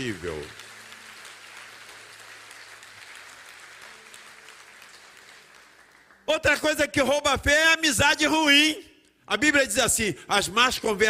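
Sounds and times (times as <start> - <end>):
speech: 0.0 - 0.6, 6.3 - 11.0
large crowd applauding: 0.0 - 6.7.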